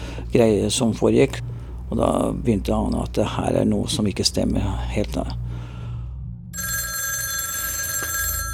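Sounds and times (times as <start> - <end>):
low ambient hum: 0.0 - 7.6
speech: 0.3 - 5.4
landline telephone bell ringing: 6.6 - 8.5.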